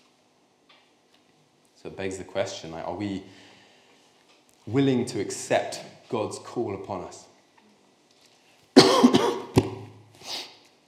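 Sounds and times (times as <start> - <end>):
speech: 1.8 - 3.4, 4.7 - 7.3
breathy exhale: 3.3 - 4.0
person coughing in a loud cough fit: 8.8 - 9.9.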